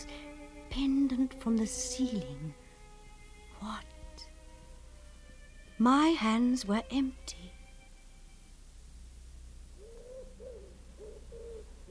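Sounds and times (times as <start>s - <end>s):
faint rumble: 0.0s - 11.9s
speech: 0.8s - 2.6s, 3.6s - 3.9s, 5.8s - 7.6s
wood pigeon cooing in low hollow notes: 9.8s - 11.9s.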